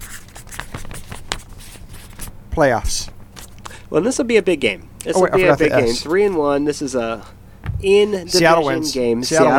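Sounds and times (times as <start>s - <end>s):
felt-tip marker squeaking and scratching across paper: 0.0s - 2.3s
speech: 2.6s - 3.2s, 3.9s - 9.5s.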